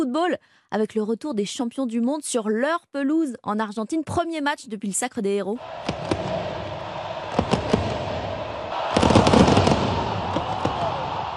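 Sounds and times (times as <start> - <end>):
speech: 0.0 - 6.1
dense crowd roar in a football stadium: 5.6 - 11.3
fireworks crackling and banging in a football stadium: 5.8 - 11.3.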